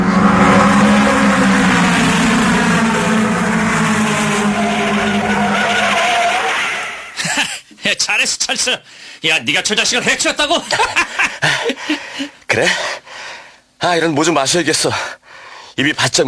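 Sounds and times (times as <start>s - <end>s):
racing car engine roaring: 0.0s - 7.2s
racing car tires skidding and screeching: 0.0s - 7.2s
speech: 8.2s - 13.1s, 13.8s - 15.2s, 15.8s - 16.2s.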